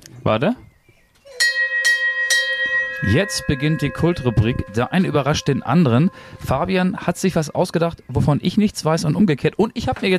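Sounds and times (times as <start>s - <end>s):
speech: 0.2s - 0.6s, 3.0s - 10.1s
hand bell ringing: 1.4s - 6.8s.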